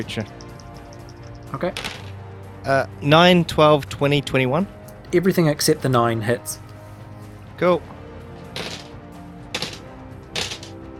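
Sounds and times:
speech: 0:00.0 - 0:00.4, 0:01.5 - 0:02.0, 0:02.6 - 0:06.6, 0:07.6 - 0:07.9
dice rolled for attacks in a tabletop game clattering on a hard surface: 0:00.3 - 0:02.2, 0:08.6 - 0:08.9, 0:09.5 - 0:10.7.

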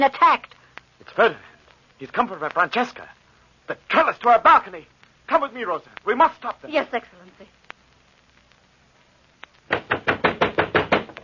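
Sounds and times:
speech: 0:00.0 - 0:07.6
knocking on a door: 0:09.7 - 0:11.2.

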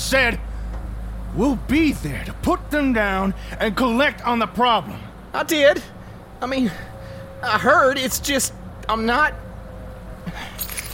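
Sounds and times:
faint steady hum: 0:00.0 - 0:10.9
speech: 0:00.1 - 0:00.5, 0:01.3 - 0:09.4
keys jangling: 0:10.3 - 0:10.9.

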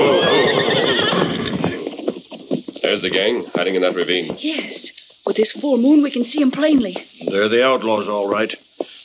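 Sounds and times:
horse neighing: 0:00.0 - 0:02.6
faint hoof clops: 0:00.0 - 0:09.0
speech: 0:03.0 - 0:08.6.

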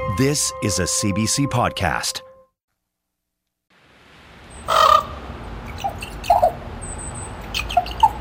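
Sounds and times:
speech: 0:00.2 - 0:02.3
ravens calling in a rainforest: 0:04.5 - 0:08.2.

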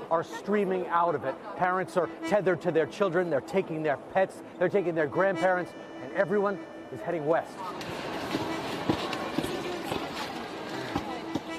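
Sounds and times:
crowd murmur on a busy railway platform: 0:00.0 - 0:11.5
speech: 0:00.1 - 0:08.4
clacking footsteps on a railway platform: 0:07.7 - 0:11.5.

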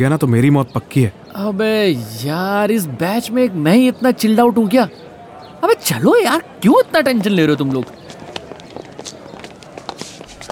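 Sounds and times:
speech: 0:00.0 - 0:08.0
footsteps of several people walking toward a college canteen: 0:07.0 - 0:10.4.

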